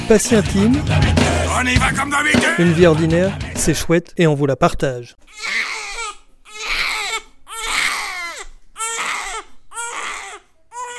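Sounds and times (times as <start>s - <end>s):
speech: 0.1s - 5.7s
baby crying loudly in wailing bursts: 5.3s - 10.9s.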